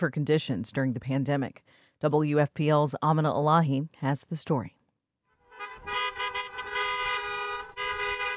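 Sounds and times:
speech: 0:00.0 - 0:04.8, 0:05.6 - 0:06.2
car horns honking at a drive-through rally: 0:05.4 - 0:08.3.

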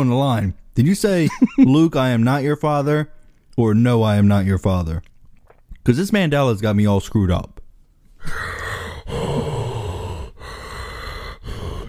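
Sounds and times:
speech: 0:00.0 - 0:05.1, 0:05.8 - 0:07.5, 0:08.2 - 0:08.6
voice imitating heavy mechanical respirator breathing: 0:08.2 - 0:11.8.

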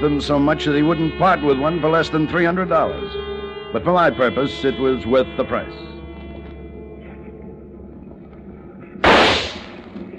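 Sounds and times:
speech: 0:00.0 - 0:05.9
rifle shot fired from a boat at sea at a finned animal: 0:09.0 - 0:10.0.

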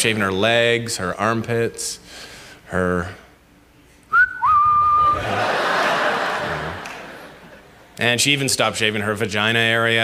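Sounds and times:
speech: 0:00.0 - 0:03.2, 0:08.0 - 0:10.0
audience member giving a short sharp whistle: 0:04.1 - 0:05.2
crowd noise: 0:04.5 - 0:08.4
scattered crowd laughter: 0:05.0 - 0:07.9.

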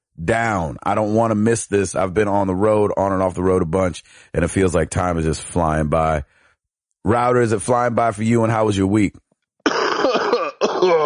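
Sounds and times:
speech: 0:00.2 - 0:06.4, 0:07.0 - 0:09.2, 0:10.8 - 0:11.0
harsh raspy coughs: 0:09.6 - 0:11.0.

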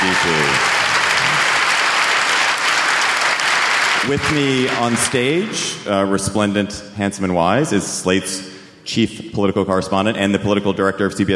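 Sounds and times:
large live audience applauding in a historic synagogue: 0:00.0 - 0:05.8
speech: 0:04.1 - 0:11.3.

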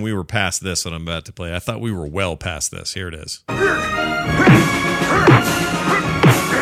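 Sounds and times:
speech: 0:00.0 - 0:06.2
music: 0:03.5 - 0:06.5
movie-style punch impacts with snare-drum ring: 0:04.4 - 0:05.6.

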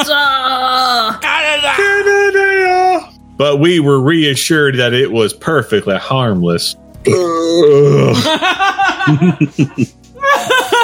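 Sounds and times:
speech: 0:00.0 - 0:02.0, 0:03.4 - 0:10.6
person doing a forced fake burp: 0:07.0 - 0:08.4
choppy rhythmic laughter: 0:08.1 - 0:10.8.

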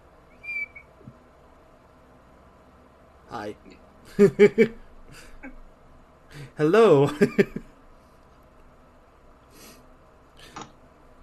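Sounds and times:
thin breathy whistle: 0:00.3 - 0:01.1
speech: 0:03.3 - 0:05.3, 0:06.6 - 0:07.6.

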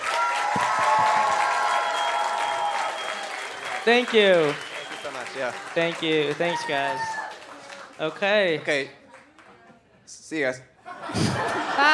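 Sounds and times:
audience cheering at a live festival event: 0:00.0 - 0:08.2
audience applause at a live festival event: 0:00.0 - 0:09.4
speech: 0:03.9 - 0:04.7, 0:05.3 - 0:07.2, 0:08.0 - 0:09.0, 0:10.1 - 0:11.9
laughter: 0:10.8 - 0:11.9.

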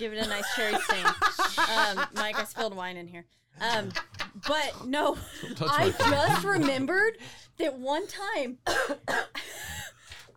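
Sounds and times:
speech: 0:00.0 - 0:09.6
laughter: 0:00.3 - 0:02.7, 0:03.6 - 0:07.1
person coughing: 0:08.7 - 0:09.7.

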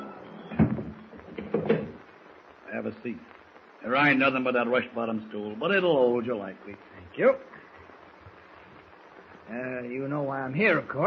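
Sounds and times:
door of a broken-down shack in the jungle closing with a muffled thump: 0:00.5 - 0:02.0
speech: 0:01.6 - 0:01.9, 0:02.8 - 0:07.5, 0:09.5 - 0:11.0.

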